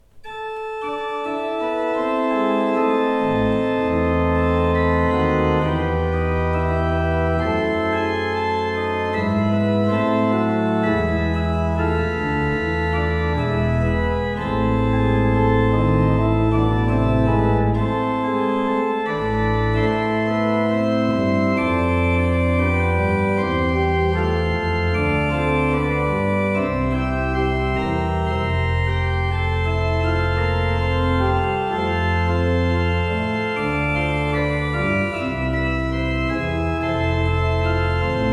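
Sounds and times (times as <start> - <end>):
pipe organ: 0.0 - 38.3.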